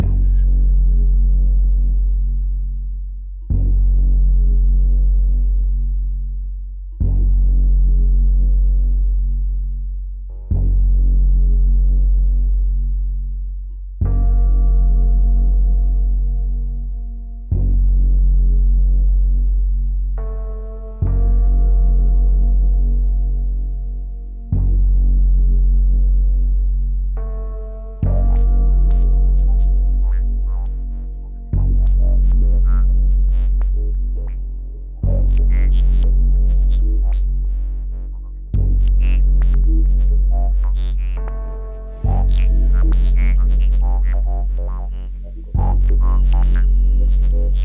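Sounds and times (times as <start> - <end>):
bass: 0.0 - 47.6.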